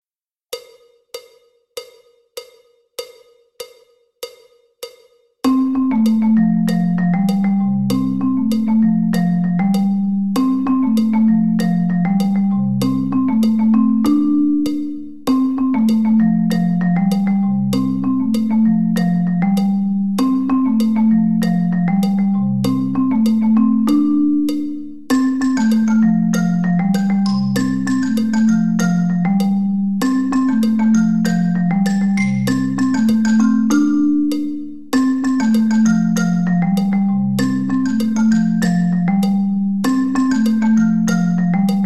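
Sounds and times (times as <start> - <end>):
backing track music: 5.5 - 41.8.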